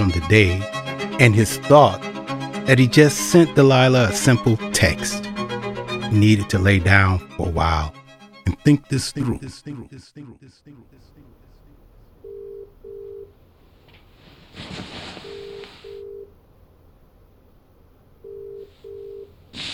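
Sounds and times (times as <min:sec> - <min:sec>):
speech: 0:00.0 - 0:02.1, 0:02.7 - 0:05.3, 0:06.1 - 0:11.4
telephone ringback tone through a handset: 0:12.2 - 0:13.3, 0:15.2 - 0:16.3, 0:18.2 - 0:19.3
brief rustling: 0:13.8 - 0:15.9.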